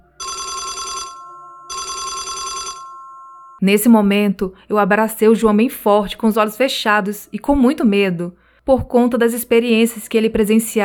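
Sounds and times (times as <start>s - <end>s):
telephone bell ringing: 0.0s - 3.6s
speech: 3.6s - 10.8s.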